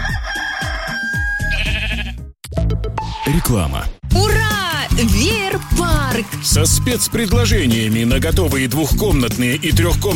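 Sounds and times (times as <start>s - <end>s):
rooster crowing: 0.0s - 1.8s
sheep bleating: 1.4s - 2.2s
speech: 3.3s - 4.4s, 5.0s - 10.1s.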